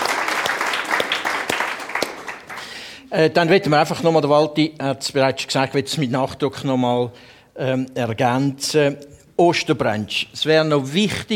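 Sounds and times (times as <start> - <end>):
applause from a group: 0.0 - 3.1
speech: 3.1 - 11.3.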